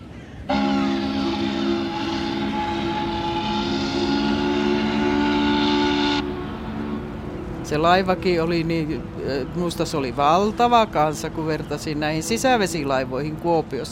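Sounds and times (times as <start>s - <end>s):
train rumbling on rails to Turku Finland: 0.0s - 13.9s
train whistle on a journey to Turku Finland: 0.5s - 7.0s
speech: 7.7s - 13.9s.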